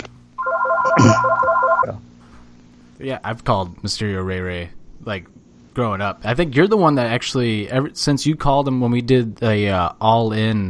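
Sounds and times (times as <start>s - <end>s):
phone ringtone with electronic tone and repeating beeps: 0.4s - 1.9s
speech: 1.0s - 1.3s, 3.0s - 10.6s.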